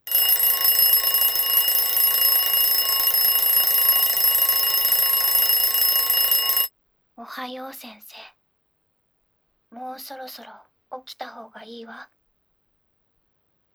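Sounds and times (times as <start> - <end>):
alarm clock ringing with a shrill electronic tone: 0.0 - 6.7
speech: 7.2 - 8.3, 9.7 - 12.2.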